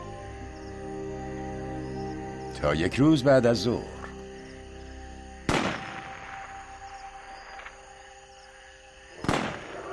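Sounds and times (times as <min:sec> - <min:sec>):
speech: 0:02.6 - 0:04.0
gunshots from illegal hunters: 0:05.5 - 0:06.4, 0:09.2 - 0:09.9.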